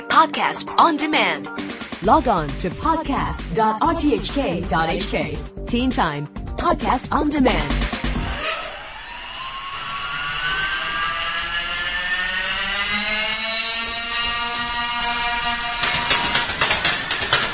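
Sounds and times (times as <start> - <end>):
speech: 0.2 - 7.8
motorized paper airplane launching machine motor whirring: 8.3 - 17.5.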